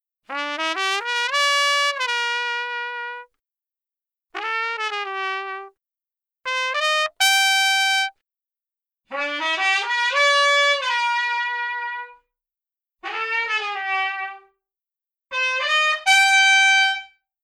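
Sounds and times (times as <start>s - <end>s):
dry trumpet: 0.3s - 3.3s, 4.4s - 5.8s, 6.4s - 8.2s, 9.1s - 12.2s, 13.0s - 14.6s, 15.3s - 17.2s.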